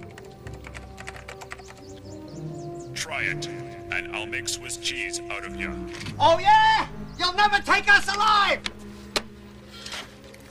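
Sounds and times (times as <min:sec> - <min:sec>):
typing on a computer keyboard: 0:00.0 - 0:01.8
speech: 0:03.0 - 0:08.8.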